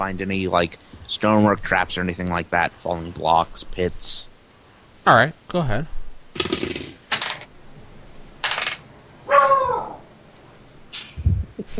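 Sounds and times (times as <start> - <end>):
speech: 0.0 - 4.3, 5.0 - 6.5
dog barking in the room: 9.3 - 10.0.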